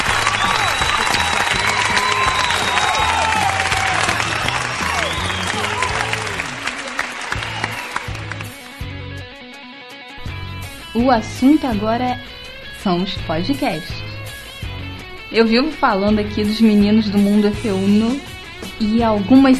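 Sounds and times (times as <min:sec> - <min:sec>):
crowd applause: 0:00.0 - 0:08.9
speech: 0:11.0 - 0:14.0, 0:15.3 - 0:19.5.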